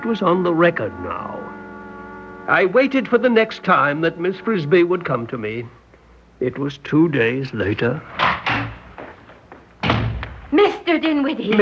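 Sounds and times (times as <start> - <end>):
speech: 0.0 - 1.5, 2.5 - 5.8, 6.4 - 8.2, 10.5 - 11.6
door banging open: 8.2 - 8.8, 9.8 - 10.4
shuffling footsteps: 8.8 - 10.3.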